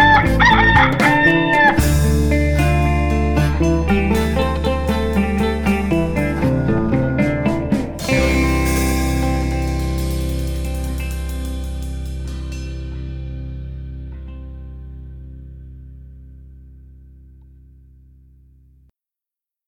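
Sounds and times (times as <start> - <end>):
rooster crowing: 0.0 - 1.8
bright steady musical jingle: 3.1 - 13.4.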